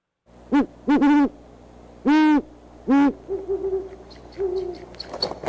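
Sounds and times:
owl hooting: 0.5s - 1.4s, 2.0s - 5.4s
eagle screaming and chittering: 3.2s - 5.4s.

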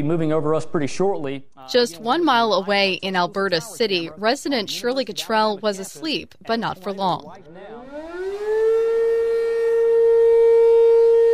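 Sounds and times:
speech: 0.0s - 7.8s
civil defense emergency siren wailing during a monthly test: 7.8s - 11.3s.

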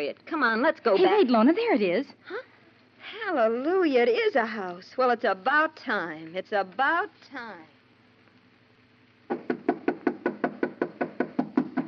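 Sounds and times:
speech: 0.0s - 7.8s
knuckle knocks on the wooden door of a house: 9.3s - 11.8s.

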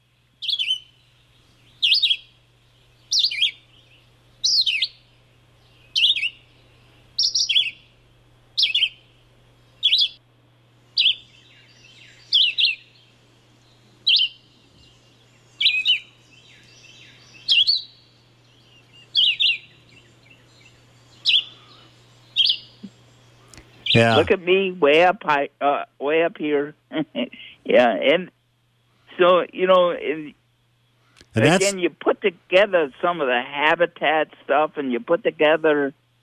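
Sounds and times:
faint constant low hum: 0.0s - 36.2s
red-eyed vireo singing short high phrases: 0.4s - 0.8s, 1.7s - 2.2s, 3.0s - 5.0s, 5.6s - 6.4s, 7.2s - 7.8s, 8.6s - 9.0s, 9.8s - 10.2s, 11.0s - 12.8s, 13.6s - 23.1s
speech: 24.0s - 28.3s, 29.2s - 30.4s, 31.4s - 36.0s.

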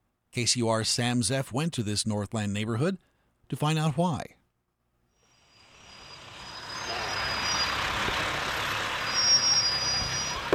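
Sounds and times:
speech: 0.4s - 4.4s
faint high squeal of bus brakes: 5.2s - 8.0s, 8.6s - 10.5s
school bus air brakes hissing: 5.2s - 10.5s
large school bus rumbling and stopping: 5.6s - 10.5s.

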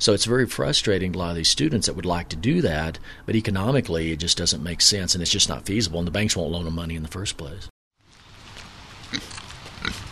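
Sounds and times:
speech: 0.0s - 7.7s
pigs grunting on a small pig farm in Longmont: 9.1s - 10.0s.

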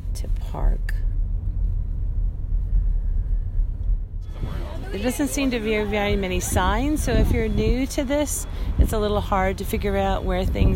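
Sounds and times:
heavy low rumble of downtown road traffic: 0.0s - 10.7s
speech: 0.2s - 1.2s, 4.4s - 10.7s.

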